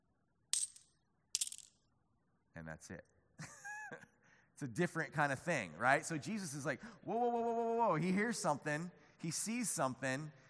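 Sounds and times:
coins dropped into a temple collection chest: 0.6s - 1.8s
speech: 2.6s - 10.4s.

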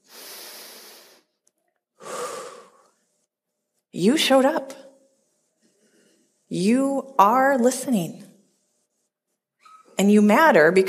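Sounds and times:
deep breath taken slowly: 0.0s - 1.3s, 2.0s - 3.0s
speech: 3.9s - 4.8s, 6.5s - 8.2s, 10.0s - 10.8s.

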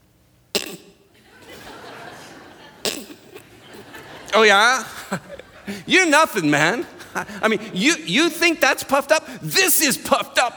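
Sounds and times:
low steady hiss: 0.0s - 10.5s
person imitating an animal's cough-like puffs of air from its nostrils: 0.6s - 1.0s, 2.8s - 3.5s
laughter: 1.2s - 8.0s
speech: 4.4s - 10.5s.

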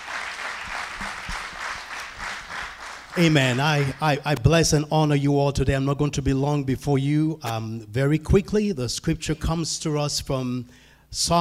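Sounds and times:
audience applauding in praise: 0.0s - 4.2s
speech: 3.2s - 11.3s.

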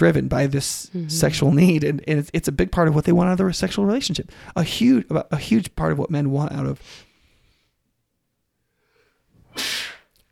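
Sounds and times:
speech: 0.0s - 7.1s
person sneezing: 9.5s - 10.1s.

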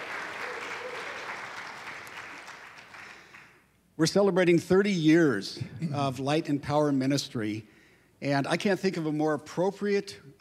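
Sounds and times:
congregation applauding: 0.0s - 3.6s
speech: 4.0s - 10.3s.

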